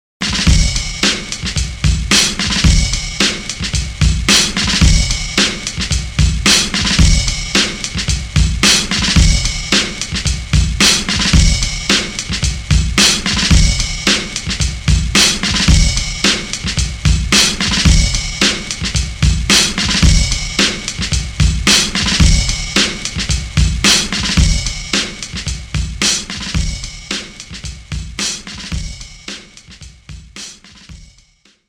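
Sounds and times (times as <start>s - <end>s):
drums interlude: 0.2s - 31.6s.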